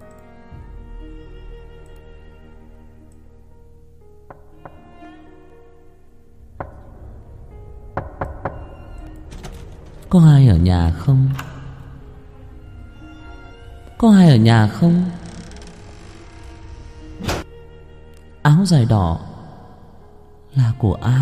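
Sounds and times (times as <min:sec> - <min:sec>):
sustained tonal music: 0:00.0 - 0:21.2
knocking on a door in a village at night: 0:06.6 - 0:07.2, 0:07.9 - 0:09.8
speech: 0:10.1 - 0:11.5, 0:14.0 - 0:15.2, 0:18.6 - 0:19.3, 0:20.8 - 0:21.2.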